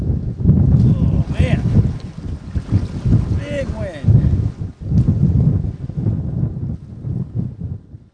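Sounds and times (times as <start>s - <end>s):
strong wind buffeting the microphone: 0.0s - 8.1s
waves sloshing against the river bank: 0.8s - 5.1s.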